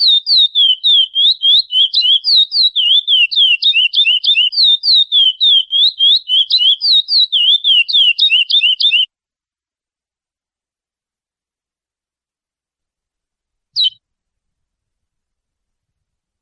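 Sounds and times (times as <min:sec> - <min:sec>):
Chestnut-bellied seed finch singing Praia song type for training young birds: 0:00.0 - 0:09.1, 0:13.8 - 0:14.0.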